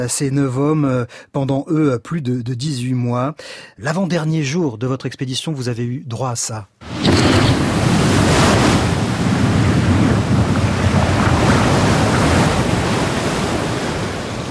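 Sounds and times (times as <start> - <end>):
speech: 0.0 - 7.5
heavy swell crashing surf at sea: 6.8 - 14.4
storm wind roaring at sea: 6.8 - 14.4.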